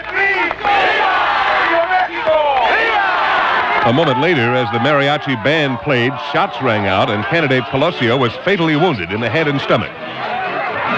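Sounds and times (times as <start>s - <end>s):
large rally crowd cheering and shouting: 0.0s - 10.9s
speech: 3.9s - 10.3s.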